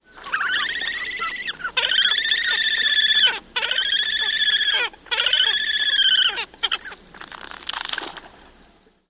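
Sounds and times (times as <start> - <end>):
horned grebe giving squealing trilled calls: 0.1 - 7.0.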